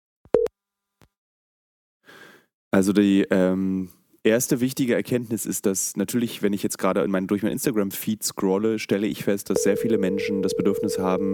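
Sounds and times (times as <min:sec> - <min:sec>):
speech: 0:02.7 - 0:11.3
telephone busy tone after a dropped mobile call: 0:09.6 - 0:11.3.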